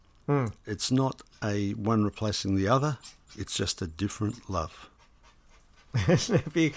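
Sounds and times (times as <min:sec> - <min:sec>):
speech: 0:00.3 - 0:04.9, 0:05.9 - 0:06.7
dog panting: 0:02.1 - 0:06.7
laughter: 0:06.0 - 0:06.7.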